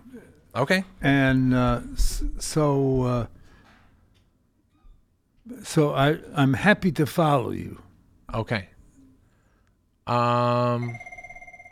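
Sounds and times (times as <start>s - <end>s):
speech: 0.5s - 3.4s, 5.5s - 8.7s, 10.1s - 11.1s
telephone ringing: 10.7s - 11.7s.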